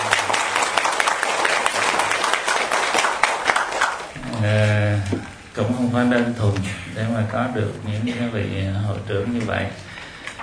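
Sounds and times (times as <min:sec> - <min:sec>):
audience applause at a gathering: 0:00.0 - 0:04.2
speech: 0:05.8 - 0:09.9.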